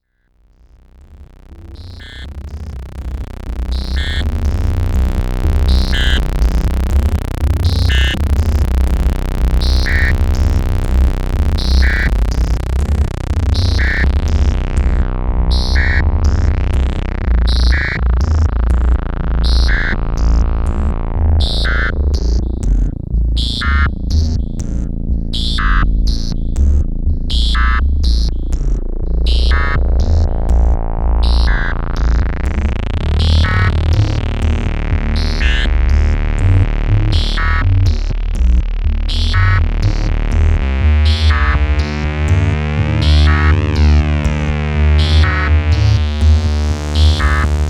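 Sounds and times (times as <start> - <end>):
MicroBrute synthesizer bass: 0.0 - 47.6.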